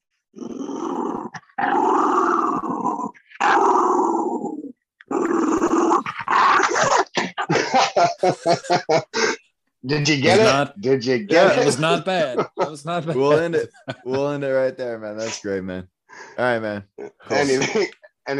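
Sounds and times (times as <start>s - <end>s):
dog growling: 0.4s - 6.9s
laughter: 6.1s - 9.4s, 11.3s - 15.3s, 17.3s - 18.1s
speech: 8.2s - 18.3s.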